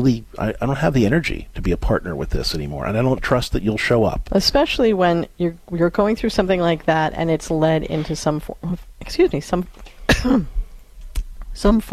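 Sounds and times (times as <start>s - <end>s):
speech: 0.0s - 10.6s, 11.6s - 11.9s
person clearing throat: 10.0s - 10.6s.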